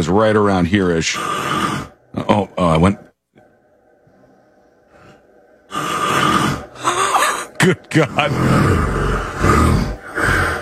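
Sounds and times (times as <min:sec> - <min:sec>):
speech: 0:00.0 - 0:03.0, 0:07.6 - 0:10.4
loud deep snoring: 0:01.0 - 0:02.3, 0:05.7 - 0:07.1, 0:08.0 - 0:10.6.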